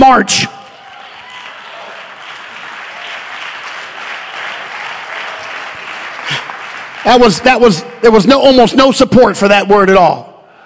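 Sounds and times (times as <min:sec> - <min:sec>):
speech: 0:00.1 - 0:00.6, 0:07.1 - 0:10.3
audience applause: 0:00.7 - 0:07.8.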